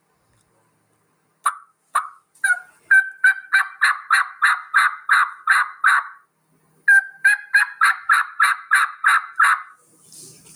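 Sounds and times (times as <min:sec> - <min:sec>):
turkey yelps on a bat wing style mouth call: 0:01.4 - 0:06.2, 0:06.9 - 0:09.8.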